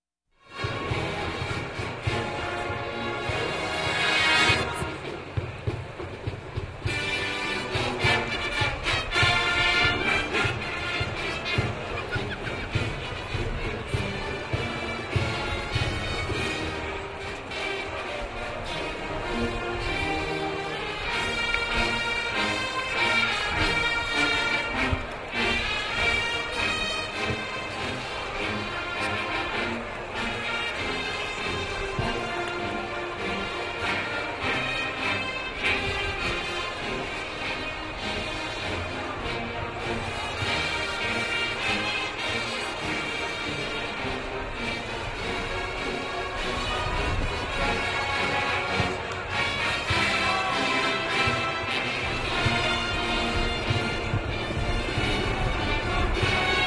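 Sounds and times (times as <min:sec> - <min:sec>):
brass band parade in a city: 0:00.3 - 0:56.6
laughter: 0:10.0 - 0:14.8, 0:46.5 - 0:53.2.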